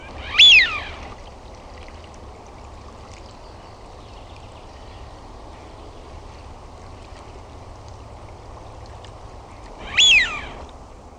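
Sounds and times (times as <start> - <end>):
Eurasian wigeon whistle: 0.2 - 0.9, 9.8 - 10.6.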